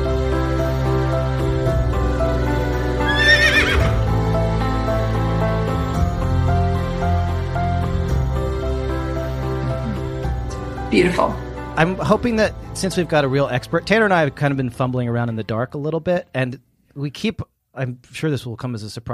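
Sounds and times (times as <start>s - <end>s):
steady sustained musical backing: 0.0s - 15.7s
horse whinny: 3.0s - 4.0s
speech: 11.0s - 19.1s.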